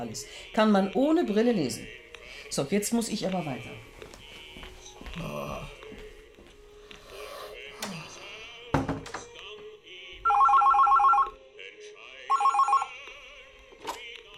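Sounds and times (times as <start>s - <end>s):
speech: 0.0s - 3.9s, 5.2s - 5.8s
telephone ringing with bright rapid bell trills: 10.2s - 11.4s, 12.3s - 13.0s.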